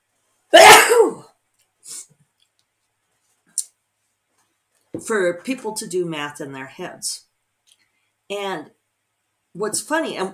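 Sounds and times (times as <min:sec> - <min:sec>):
loud breathy sneeze: 0:00.5 - 0:01.3
short sniffs: 0:01.8 - 0:02.1
speech: 0:05.0 - 0:07.3, 0:08.3 - 0:08.8, 0:09.6 - 0:10.3.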